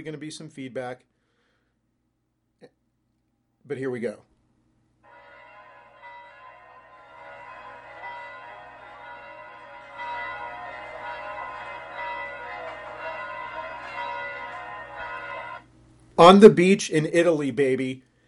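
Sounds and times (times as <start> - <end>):
speech: 0.0 - 1.2, 3.6 - 4.3, 16.2 - 18.1
church bells pealing in a town square: 5.1 - 15.7.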